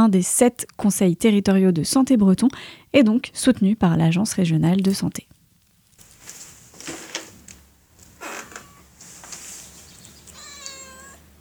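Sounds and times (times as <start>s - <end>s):
speech: 0.0s - 5.3s
low steady hum: 0.0s - 11.3s
cat meowing: 8.2s - 9.0s, 9.9s - 11.3s.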